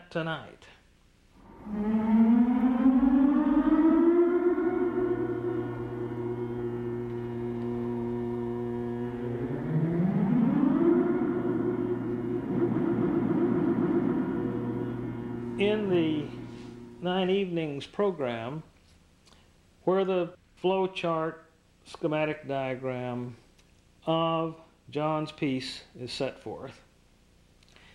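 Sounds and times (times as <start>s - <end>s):
speech: 0.1s - 0.8s, 1.6s - 2.2s, 17.8s - 18.7s, 19.9s - 23.4s, 24.0s - 26.9s
electronic air-raid-siren-like wails made with voltage-controlled generators: 1.4s - 17.0s
steady low drone: 1.4s - 17.1s.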